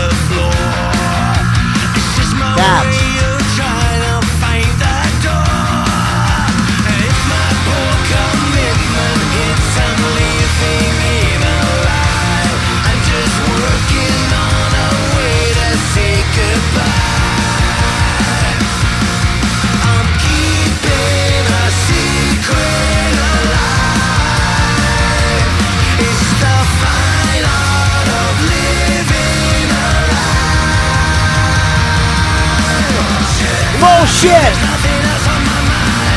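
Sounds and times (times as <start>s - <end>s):
loud dense rock track with full band: 0.0s - 36.1s
driving drums and drum fills: 33.8s - 35.0s.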